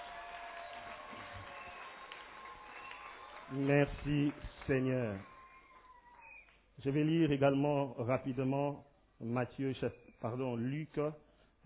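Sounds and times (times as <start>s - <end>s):
audience applauding and cheering: 0.0s - 6.6s
speech: 3.5s - 5.3s, 6.8s - 11.6s.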